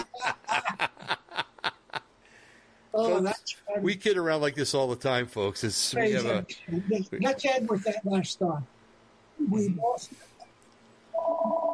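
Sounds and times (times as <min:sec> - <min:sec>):
laughter: 0:00.0 - 0:02.0
speech: 0:03.0 - 0:08.8, 0:09.4 - 0:10.3
telephone ringing with a loud electronic trill: 0:11.2 - 0:11.7.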